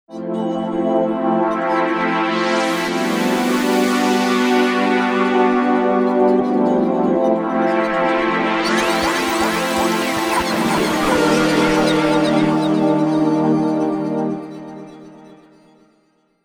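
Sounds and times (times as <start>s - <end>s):
ocean synthesizer pad on a V-Synth: 0.2s - 15.6s.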